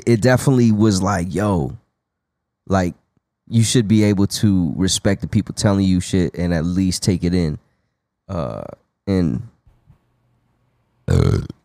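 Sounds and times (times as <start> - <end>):
speech: 0.0 - 1.8, 2.7 - 7.7, 8.3 - 9.5, 11.1 - 11.6
person burping: 11.1 - 11.6.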